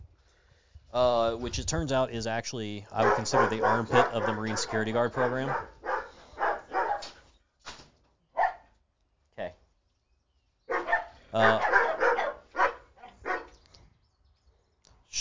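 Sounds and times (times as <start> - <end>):
speech: 0.9 - 5.8, 11.4 - 11.7
dog barking: 3.0 - 7.2, 8.4 - 8.7, 10.7 - 13.5.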